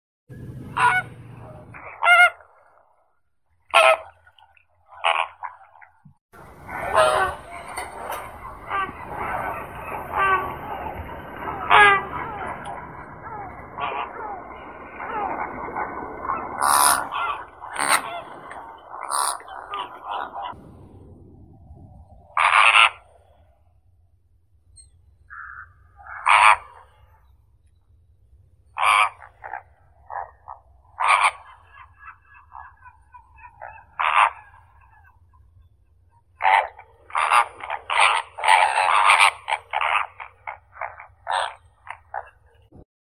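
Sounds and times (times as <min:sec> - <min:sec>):
Phoenicopterus roseus flamingo: 0:00.3 - 0:02.8, 0:03.7 - 0:05.6, 0:06.4 - 0:21.2, 0:22.4 - 0:23.4, 0:28.8 - 0:35.2, 0:36.4 - 0:42.6.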